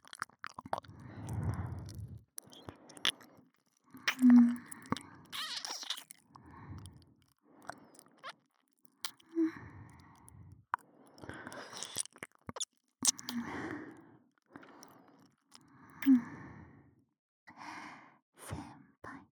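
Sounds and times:
wet mouth sounds of someone chewing and nibbling on an ear: 0.0s - 10.0s, 10.8s - 13.6s.

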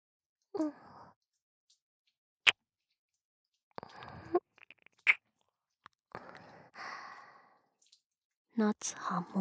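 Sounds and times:
speech: 0.6s - 0.8s, 8.6s - 9.4s
wet kissing sounds close to the ear: 4.4s - 5.2s.

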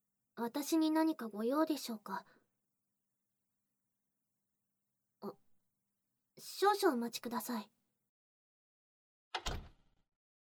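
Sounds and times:
speech: 0.4s - 2.4s, 6.4s - 7.8s
door latch click: 9.4s - 9.8s
door swinging shut with a solid thud: 9.4s - 10.0s.

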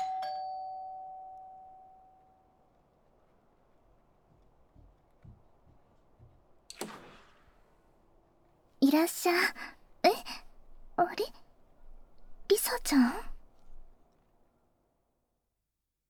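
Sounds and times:
doorbell chime ringing as the button is pressed: 0.0s - 2.4s
speech: 8.9s - 10.2s, 11.2s - 11.4s, 12.7s - 13.3s.

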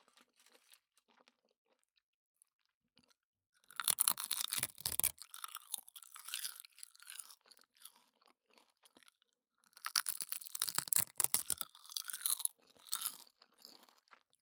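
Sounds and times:
dried nori seaweed being bitten and chewed: 3.7s - 8.0s, 9.8s - 13.9s.

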